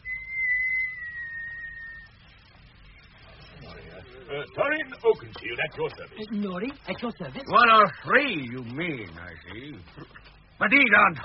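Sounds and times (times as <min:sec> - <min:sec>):
person whistling a signal: 0:00.0 - 0:02.1
low rumble: 0:00.0 - 0:11.2
speech: 0:04.0 - 0:11.2.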